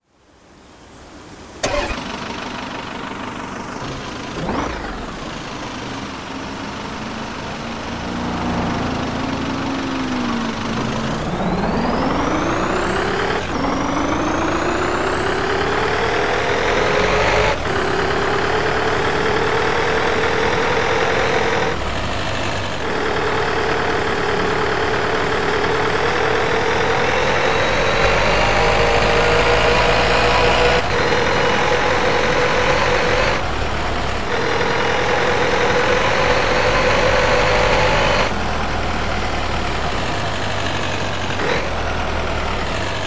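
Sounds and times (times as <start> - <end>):
Audi S6 car: 0.0 - 43.0.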